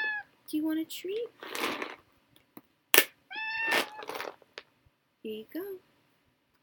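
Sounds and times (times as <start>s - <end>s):
cat meowing: 0.0s - 0.3s, 3.3s - 4.2s
speech: 0.5s - 1.9s, 5.2s - 5.9s.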